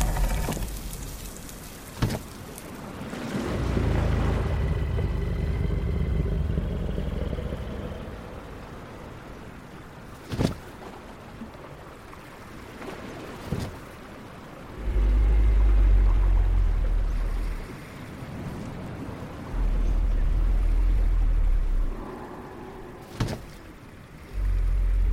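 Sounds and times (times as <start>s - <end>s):
deep growling dragon roar: 0.0s - 0.9s, 3.1s - 9.0s, 14.7s - 17.9s, 19.3s - 25.1s
slow low rumbling ocean waves: 0.0s - 25.1s.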